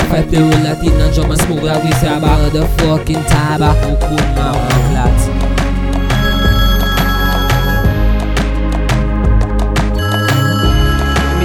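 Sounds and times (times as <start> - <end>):
music track with heavy bass and sharp percussion: 0.0 - 11.4
speech: 0.1 - 5.5
telephone ring tone within a music track: 6.0 - 8.2, 10.0 - 11.4.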